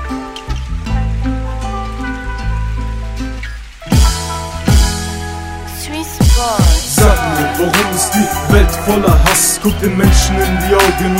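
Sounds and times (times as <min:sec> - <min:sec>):
steady rain: 0:00.0 - 0:11.1
speech: 0:07.6 - 0:11.1.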